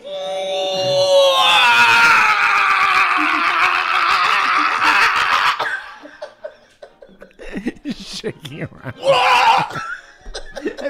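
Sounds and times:
man screaming as a comedy character: 0.0s - 5.7s, 9.0s - 9.8s
laughter: 2.7s - 10.8s.

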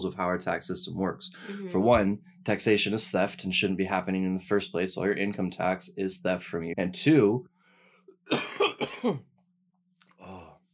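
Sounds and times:
speech: 0.0s - 7.5s, 8.3s - 9.3s
person coughing during a conversation: 8.3s - 9.2s.

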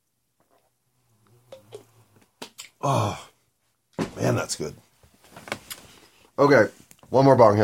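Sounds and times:
slurping sip of a creamy root beer float: 0.4s - 2.8s
faint mouth sounds: 0.4s - 3.1s
speech: 2.8s - 3.3s, 4.2s - 4.9s, 6.4s - 7.6s.

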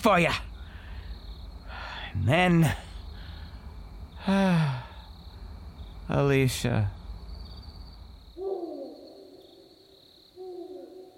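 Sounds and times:
speech: 0.0s - 0.5s, 2.2s - 2.9s, 4.2s - 4.9s, 6.1s - 7.0s
owl hooting: 8.4s - 11.1s.

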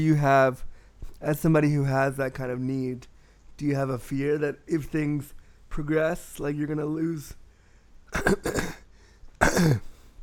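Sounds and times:
speech: 0.0s - 7.4s, 8.1s - 8.8s, 9.4s - 9.9s
person clearing throat with rough husky coughs: 8.1s - 10.0s.

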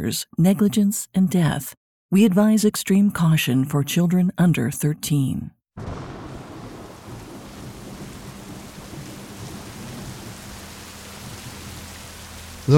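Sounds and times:
speech: 0.0s - 6.1s
deep rolling thunder in the mountains around Johnstown Pennsylvania: 5.8s - 12.7s
heavy rain in the mountains around Johnstown Pennsylvania: 5.8s - 12.7s.

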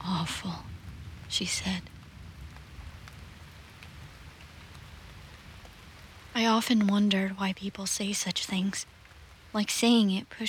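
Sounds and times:
low rumbling undertone: 0.0s - 5.7s
storm rain pattering against a window: 0.0s - 10.4s
speech: 0.3s - 0.7s, 1.3s - 2.0s, 6.4s - 10.4s.

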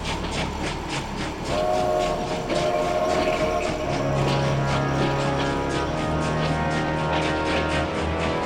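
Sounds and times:
passing train wheels clattering on track: 0.0s - 8.4s
train whistle: 1.5s - 8.4s.

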